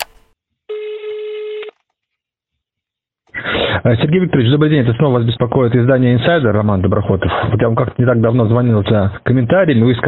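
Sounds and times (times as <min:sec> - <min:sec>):
telephone ringing tone over the line: 0:00.7 - 0:01.7
speech: 0:03.8 - 0:10.0.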